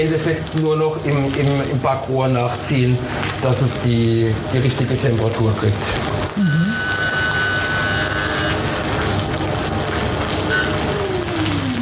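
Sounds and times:
speech: 0.0 - 6.9
food being seared sizzling in a hot pan: 0.0 - 11.8
faint hum: 3.4 - 11.8.

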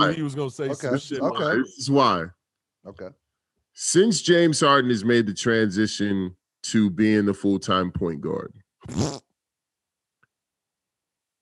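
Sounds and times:
speech: 0.0 - 3.2, 3.8 - 9.2
person blowing a raspberry with the lips imitating a fart: 8.8 - 9.3.

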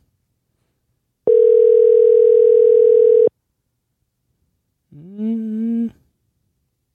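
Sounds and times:
telephone ringback tone: 1.3 - 3.3.

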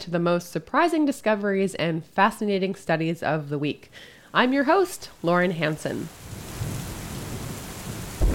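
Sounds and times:
speech: 0.0 - 6.2
steady rain hissing: 4.0 - 8.3
low thunder rumbling: 6.1 - 8.3.

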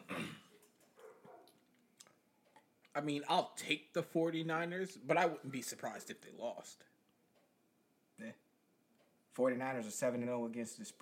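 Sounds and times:
dog barking and yipping: 0.9 - 1.6
speech: 3.0 - 7.0, 8.2 - 8.4, 9.4 - 11.0.

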